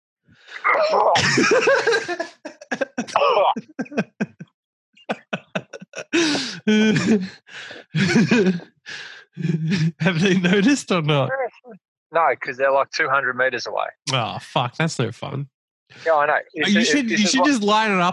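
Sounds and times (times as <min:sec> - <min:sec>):
speech: 0:00.4 - 0:02.4, 0:06.2 - 0:18.1
laughter: 0:00.7 - 0:04.4, 0:05.1 - 0:11.3, 0:16.0 - 0:18.1
person coughing in harsh forced hacks: 0:01.2 - 0:04.4, 0:05.1 - 0:08.7.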